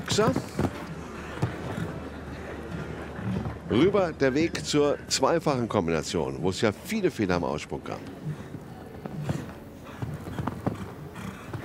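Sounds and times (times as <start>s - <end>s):
horse hooves galloping on soft arena ground during a show-jumping round: 0.0s - 3.9s, 8.0s - 11.6s
faint noise: 0.0s - 11.6s
speech: 0.2s - 0.6s, 3.7s - 8.3s.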